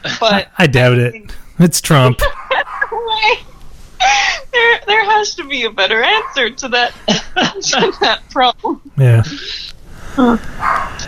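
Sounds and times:
faint hiss: 0.0s - 11.0s
speech: 0.2s - 2.3s, 3.2s - 11.0s
laughter: 2.1s - 3.4s, 7.0s - 8.2s
dog barking: 2.2s - 3.0s, 6.1s - 6.5s, 10.6s - 11.0s.

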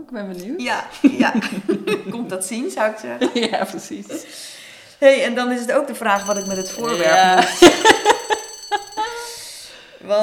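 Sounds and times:
speech: 0.0s - 7.8s
telephone ringing with a bright metallic bell: 6.2s - 9.8s
laughter: 6.9s - 9.0s.

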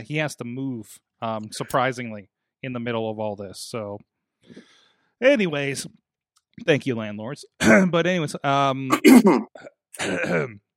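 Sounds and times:
speech: 0.0s - 6.0s, 6.6s - 10.6s
throat-clearing cough: 7.6s - 7.9s, 8.9s - 10.7s.

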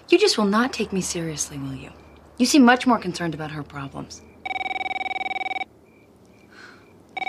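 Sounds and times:
speech: 0.1s - 4.3s
telephone bell ringing: 4.4s - 5.7s.

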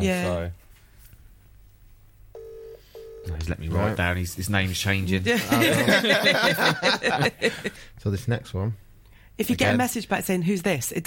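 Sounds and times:
speech: 0.0s - 0.6s, 3.2s - 8.8s, 9.4s - 11.0s
low hum: 0.0s - 11.0s
phone dialing tone: 2.4s - 3.4s
laughter: 5.4s - 7.8s.

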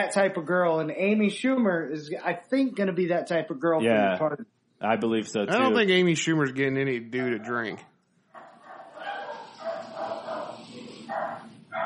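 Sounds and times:
speech: 0.0s - 7.9s
dogs barking and yipping: 8.4s - 11.8s.

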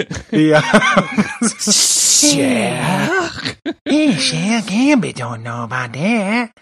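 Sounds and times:
laughter: 0.0s - 4.5s
speech: 0.0s - 6.6s
strained exaggerated vocal sounds: 1.3s - 5.0s
voice imitating a breathy snake hiss: 1.6s - 2.8s.

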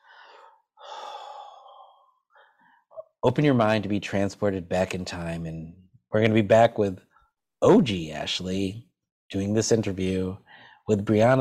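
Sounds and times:
deep cleansing breath: 0.0s - 3.0s, 10.4s - 10.9s
speech: 3.2s - 11.4s.

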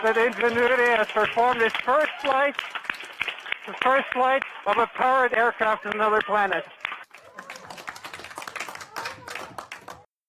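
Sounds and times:
speech: 0.0s - 2.8s, 3.7s - 6.8s
laughter: 0.0s - 10.0s
small group cheering with joyful shouts: 0.0s - 10.1s
small group clapping in a small room: 0.0s - 10.1s.

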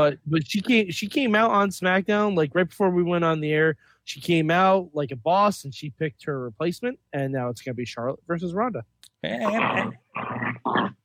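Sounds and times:
speech: 0.0s - 11.0s
dog growling: 9.2s - 11.0s.

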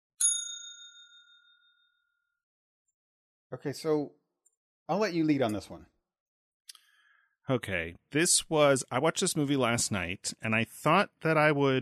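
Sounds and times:
single bright bell struck: 0.2s - 1.6s
speech: 3.5s - 4.2s, 4.9s - 5.9s, 7.5s - 11.8s.

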